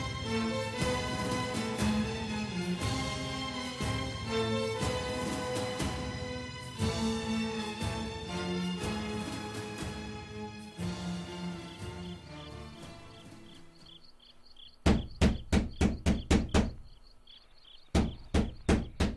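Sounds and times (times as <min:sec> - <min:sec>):
musical passage: 0:00.0 - 0:14.0
faint insect chirps: 0:10.7 - 0:19.0
loud knocks on a door: 0:14.8 - 0:17.0, 0:17.9 - 0:19.1.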